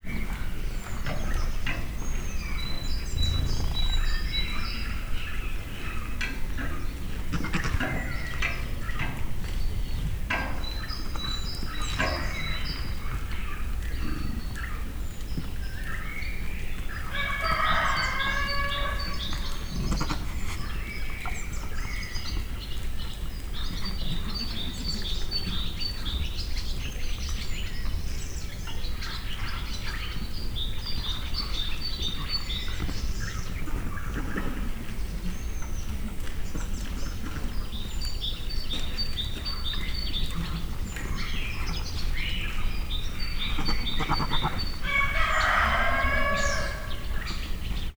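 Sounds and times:
birds chirping in a farmyard: 0.0 - 47.9
rooster crowing in a farmyard: 17.2 - 19.3, 44.8 - 47.2.

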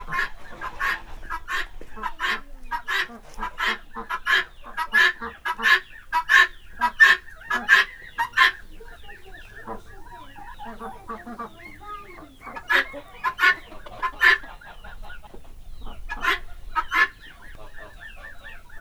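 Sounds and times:
ducks in a farmyard: 0.0 - 18.8
geese in a farmyard: 0.0 - 18.8
guineafowl in a farmyard: 0.0 - 18.8.

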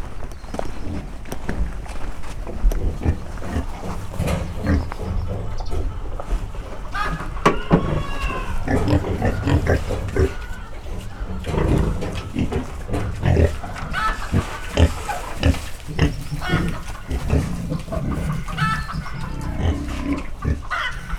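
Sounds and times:
chickens in a farmyard: 0.0 - 21.1
pigs in a farmyard: 0.0 - 21.1.

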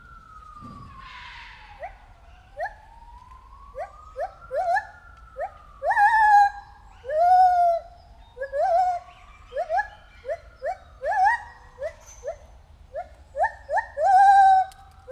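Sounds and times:
white-handed gibbon calling at a zoo: 3.8 - 15.1.

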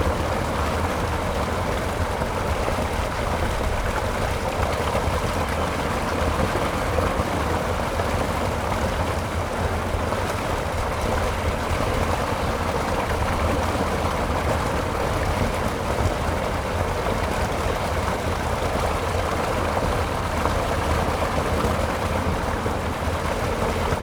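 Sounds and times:
ditch water draining through a sluice at the Hortobagy fish ponds: 0.0 - 24.0.

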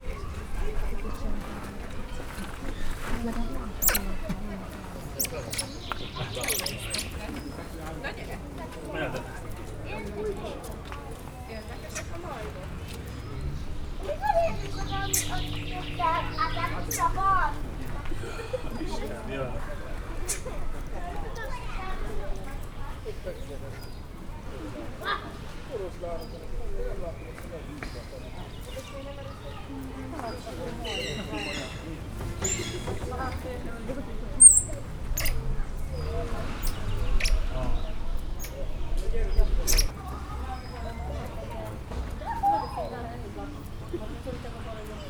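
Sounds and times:
noisy visitors at the Pécs zoo: 0.0 - 45.0
squirrel monkey at the Pécs zoo: 3.7 - 4.2, 5.1 - 7.3, 14.2 - 17.3, 20.2 - 20.5, 32.4 - 33.0, 34.4 - 35.8, 36.5 - 38.8, 39.4 - 40.0.

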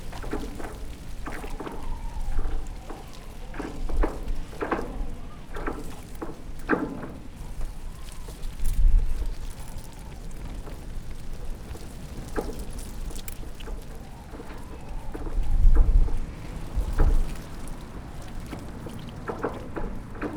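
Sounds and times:
wind whistling through trees in Arrecife Lanzarote: 0.0 - 20.3.

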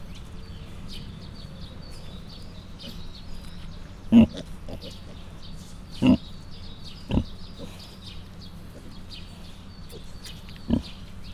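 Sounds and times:
low background hum: 0.0 - 11.3
Mangalica suckling piglets grunting at a zoo in Miskolc: 2.1 - 11.1
speech: 4.1 - 4.4.

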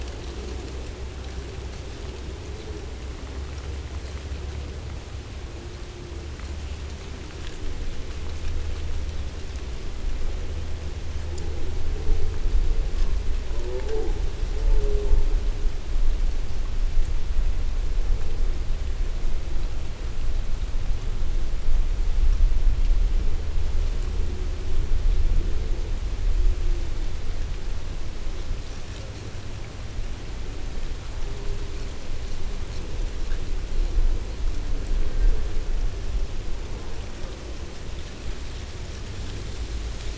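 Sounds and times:
leaves: 0.0 - 40.1.

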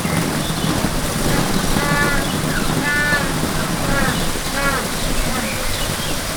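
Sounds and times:
African penguins calling in a zoo: 0.2 - 6.2.

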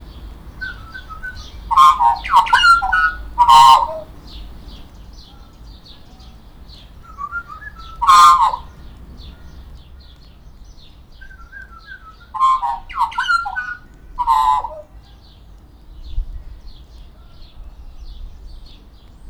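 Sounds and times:
Australian magpie warming up in a zoo: 0.0 - 6.3, 7.0 - 9.7, 11.2 - 14.9.

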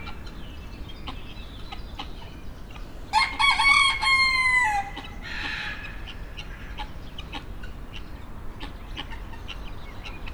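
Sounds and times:
rooster crowing in the farmyard section of a zoo in Nyíregyháza Hungary: 3.1 - 6.0.

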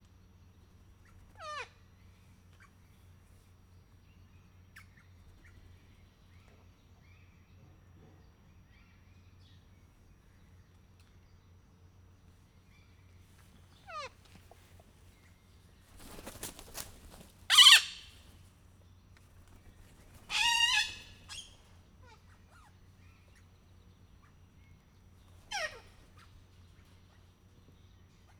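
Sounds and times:
emboldened bare-eyed cockatoo in Miskolc zoo: 1.0 - 1.8, 13.7 - 14.6, 16.0 - 18.3, 20.0 - 23.4, 25.3 - 26.4.

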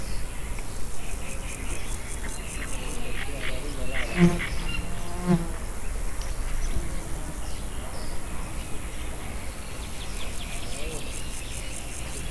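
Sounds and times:
two loud insects in nature at Tiszababolna: 0.0 - 12.3.

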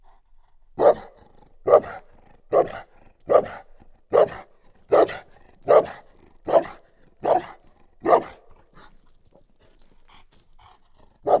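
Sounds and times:
chained dog barking at a tourist house: 0.8 - 8.6.

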